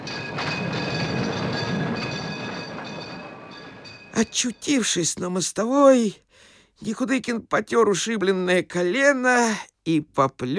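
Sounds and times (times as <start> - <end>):
faint high metallic whining tones: 0.0 - 4.9
tram car rattling along rails: 0.0 - 5.4
speech: 4.2 - 6.2, 6.8 - 10.5.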